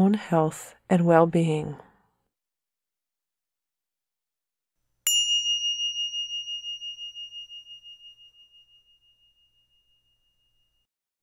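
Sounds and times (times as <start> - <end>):
speech: 0.0 - 1.9
meditation bell ringing with a clear pure tone: 5.1 - 10.8.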